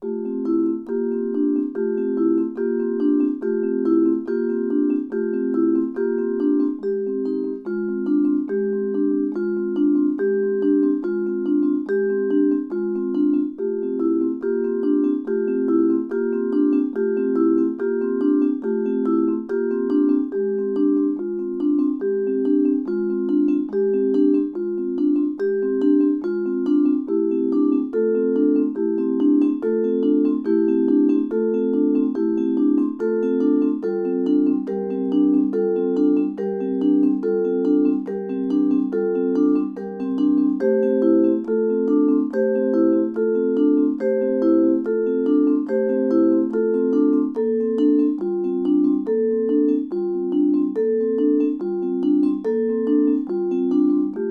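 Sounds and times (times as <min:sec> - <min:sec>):
vibraphone: 0:00.0 - 0:54.2.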